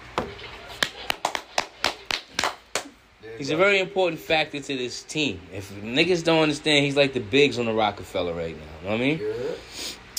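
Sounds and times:
sharp loud claps from a few hands: 0.7s - 3.0s
speech: 3.4s - 9.9s.

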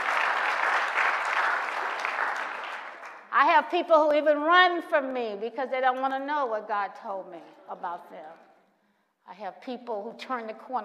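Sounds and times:
large crowd applauding: 0.0s - 3.3s
speech: 3.4s - 8.5s, 9.3s - 10.8s.

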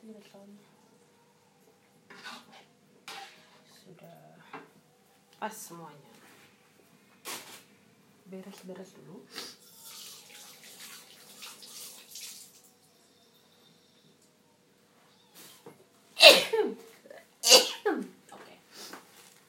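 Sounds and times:
speech: 0.2s - 0.8s, 5.4s - 6.2s, 8.3s - 9.5s
soft running water hiss: 9.3s - 13.2s
person sneezing: 16.2s - 16.8s, 17.4s - 18.1s.

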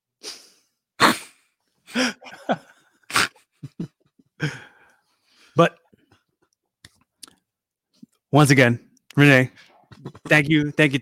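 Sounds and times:
loud sneeze: 1.0s - 1.5s, 3.1s - 3.5s
breaths: 1.8s - 2.3s, 4.4s - 5.6s, 9.5s - 9.9s
speech: 2.0s - 2.6s, 5.6s - 5.8s, 8.4s - 9.6s, 10.3s - 11.0s.

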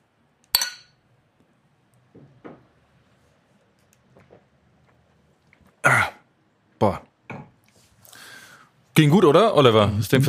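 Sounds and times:
two beer glasses clinking in a toast: 0.6s - 1.0s
speech: 6.8s - 7.0s, 9.0s - 10.2s.

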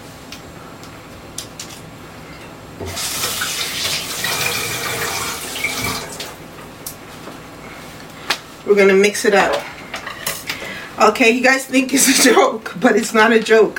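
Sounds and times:
speech: 2.8s - 3.1s, 8.7s - 9.7s, 11.0s - 13.7s
tap water running as hands are washed: 2.8s - 6.4s.

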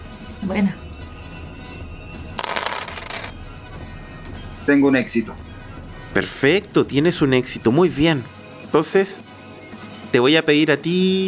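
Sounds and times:
speech: 0.4s - 0.9s, 4.7s - 5.5s, 6.2s - 9.3s, 10.1s - 11.2s
four dice clattering: 2.4s - 3.3s.

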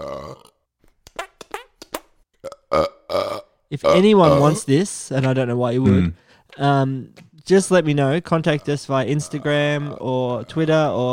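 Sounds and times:
person burping loudly: 0.0s - 0.7s, 2.4s - 6.2s, 8.4s - 11.1s
speech: 3.7s - 11.1s.

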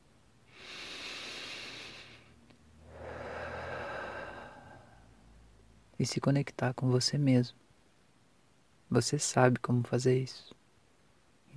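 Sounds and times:
deep breath with long inhale and slow exhale: 0.5s - 5.2s
speech: 6.0s - 7.6s, 8.9s - 10.6s.

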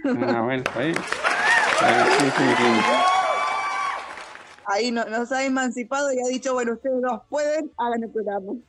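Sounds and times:
laughter: 0.0s - 3.1s
speech: 0.1s - 3.2s, 4.7s - 8.6s
crowd cheering and whooping: 0.7s - 4.6s.

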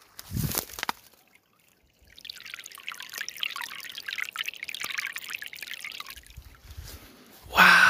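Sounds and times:
small brook trickling and babbling: 0.8s - 6.5s.

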